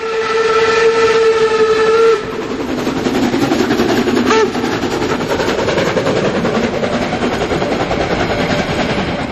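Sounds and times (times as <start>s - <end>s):
steam locomotive whistle: 0.0s - 2.5s, 4.2s - 4.7s
steam locomotive chuffing uphill: 0.0s - 9.3s.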